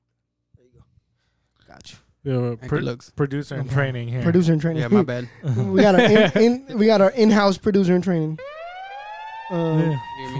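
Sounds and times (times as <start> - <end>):
speech: 1.7 - 8.5, 9.5 - 10.3
laughter: 4.8 - 6.6
steady high-pitched electronic siren tone sound-effect drop: 8.4 - 10.3.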